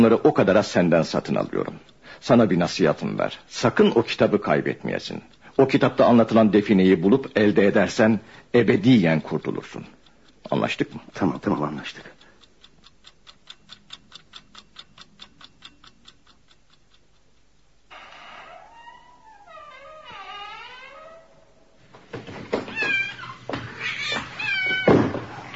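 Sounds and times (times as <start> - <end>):
speech: 0.0 - 12.2
clock ticking: 0.0 - 17.9
cat meowing: 22.7 - 25.5.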